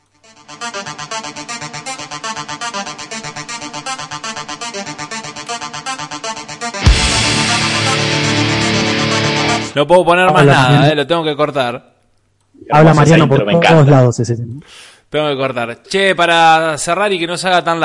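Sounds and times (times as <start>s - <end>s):
heavy metal song with distorted guitars and drums played from a recording: 6.8s - 9.8s
speech: 9.8s - 11.9s, 12.6s - 17.8s.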